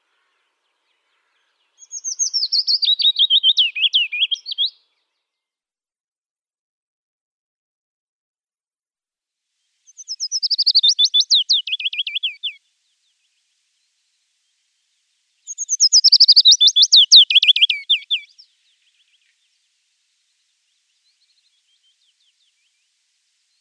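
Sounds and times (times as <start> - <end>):
willow warbler singing: 0.0 - 4.9, 9.9 - 23.5.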